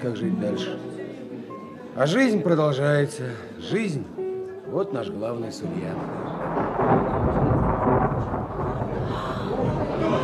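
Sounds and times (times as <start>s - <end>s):
speech: 0.0s - 1.0s, 2.0s - 7.1s
deep thunder rumbling under a big storm cloud: 5.8s - 10.2s.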